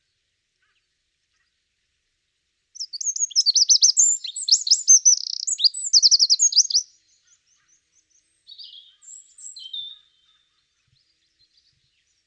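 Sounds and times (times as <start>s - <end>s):
Eurasian wren Troglodytes troglodytes song with rattling trills: 2.8s - 12.2s.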